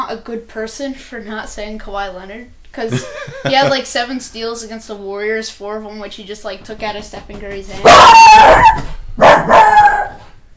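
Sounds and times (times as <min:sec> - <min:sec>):
speech: 0:00.1 - 0:09.6
laughter: 0:02.9 - 0:03.8
dog barking with a howling edge: 0:07.8 - 0:10.2.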